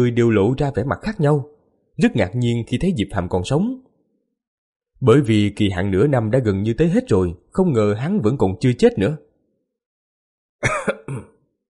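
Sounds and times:
speech: 0.0 - 3.8, 5.0 - 9.3
man coughing up blood: 10.6 - 11.4.

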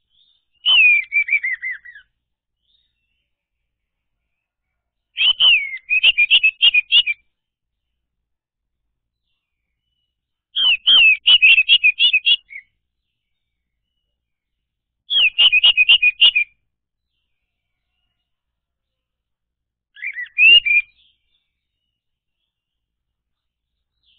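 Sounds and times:
orange-headed thrush whistled song: 0.0 - 3.4, 5.1 - 7.4, 9.4 - 14.4, 15.1 - 18.1, 19.9 - 22.6.

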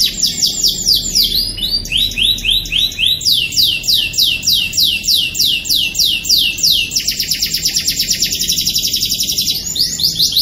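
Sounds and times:
privately kept canary singing rapid rolling trills: 0.0 - 10.3.

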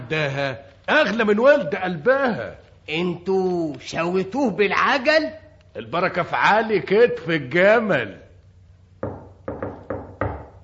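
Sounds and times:
speech: 0.1 - 8.2
firm solid knocking on a door: 9.0 - 10.6.

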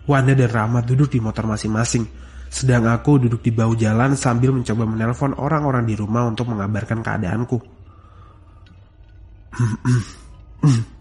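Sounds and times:
speech: 0.1 - 7.7, 9.5 - 10.9
person beside a roadside clearing their throat: 9.5 - 10.9.

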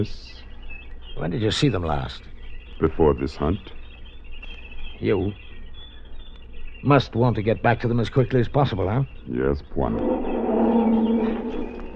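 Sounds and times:
speech: 0.0 - 0.4, 1.2 - 3.8, 5.0 - 5.4, 6.8 - 10.3
lioness roaring: 9.8 - 11.9.

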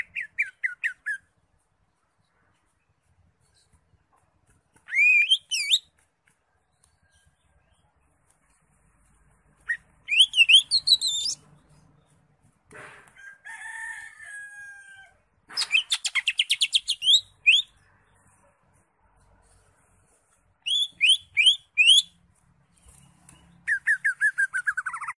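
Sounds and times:
Greater Green Leafbird singing varied phrases: 0.0 - 1.4, 4.8 - 6.0, 9.6 - 12.2, 15.6 - 17.8, 20.6 - 22.2, 22.8 - 25.0.

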